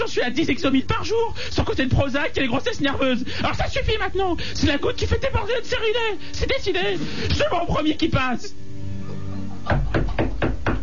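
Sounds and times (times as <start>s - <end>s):
speech: 0.2s - 8.6s
firm knocking on a door: 9.7s - 10.8s.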